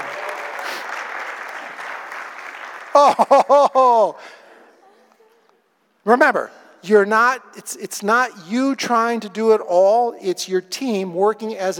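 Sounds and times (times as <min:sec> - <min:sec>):
crowd clapping steadily and densely: 0:00.0 - 0:03.5
crowd cheering: 0:00.0 - 0:04.0
speech: 0:03.0 - 0:04.3, 0:06.0 - 0:11.7
laughter: 0:03.0 - 0:05.5.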